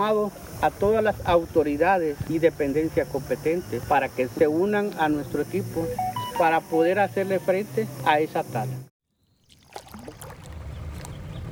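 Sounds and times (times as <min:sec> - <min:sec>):
speech: 0:00.0 - 0:08.9
fishing launch motor humming on a river: 0:09.1 - 0:11.5
light water splashing and lapping on a river: 0:09.1 - 0:11.5.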